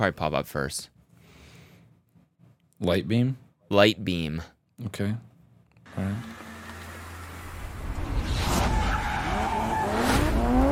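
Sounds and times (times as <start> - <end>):
speech: 0.0 - 0.9, 2.8 - 5.3, 5.9 - 6.4
race car engine revving and whining: 5.9 - 10.7
race car tires squealing and skidding: 6.2 - 10.7.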